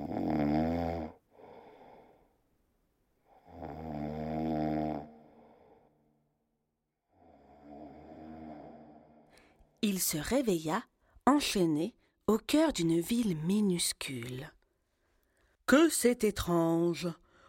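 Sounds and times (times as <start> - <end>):
giant snoring loudly and deeply while asleep: 0.0 - 2.1, 3.3 - 6.0, 7.1 - 9.3
speech: 9.8 - 14.6, 15.7 - 17.4.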